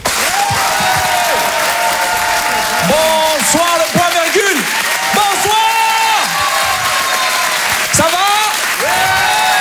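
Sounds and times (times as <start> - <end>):
audience clapping at a live comedy club show: 0.0 - 9.5.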